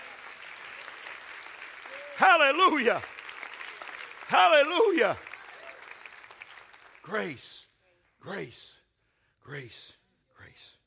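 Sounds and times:
audience clapping: 0.0s - 7.6s
speech: 2.2s - 3.1s, 4.3s - 5.3s, 7.1s - 7.6s, 8.2s - 8.8s, 9.5s - 10.0s, 10.6s - 10.8s.

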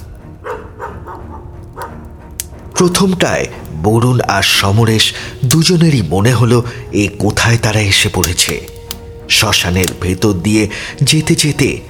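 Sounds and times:
dogs yelping at a cremation ground: 0.4s - 2.0s
speech: 2.8s - 8.8s, 9.4s - 11.8s.

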